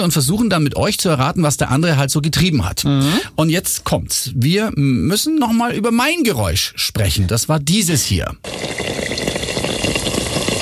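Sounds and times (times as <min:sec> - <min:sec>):
speech: 0:00.0 - 0:09.3
yeast-dough pastries frying in hot fat: 0:08.4 - 0:10.6.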